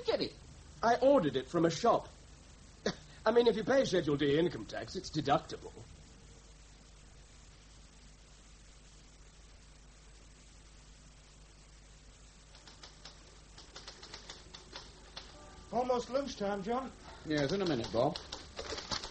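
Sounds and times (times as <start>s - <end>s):
speech: 0.0s - 2.2s, 2.8s - 6.0s, 15.8s - 18.3s
electric hum: 0.0s - 19.1s
electric typewriter typing: 12.5s - 16.2s, 17.2s - 19.1s.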